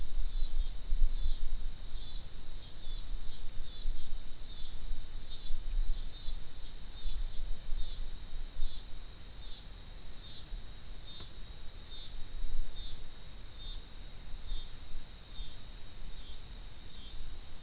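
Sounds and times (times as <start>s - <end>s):
coastal scissor grinder cicada song: 0.0s - 17.6s.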